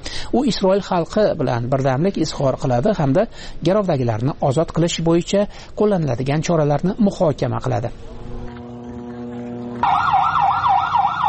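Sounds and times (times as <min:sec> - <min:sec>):
speech: 0:00.4 - 0:08.3
low drone: 0:07.9 - 0:11.2
ambulance siren in Khan Younis, Gaza, after an attack: 0:08.2 - 0:11.2.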